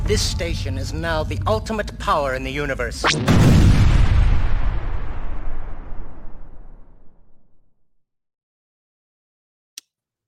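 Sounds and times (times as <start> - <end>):
speech: 0.1 - 3.7
huge booming sci-fi explosion: 3.0 - 7.7.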